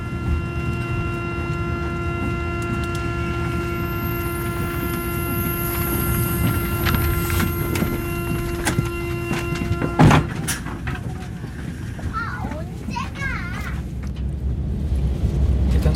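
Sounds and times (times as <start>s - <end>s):
train pulling away and rolling along: 0.0s - 15.9s
rattling train carriages: 2.1s - 14.3s.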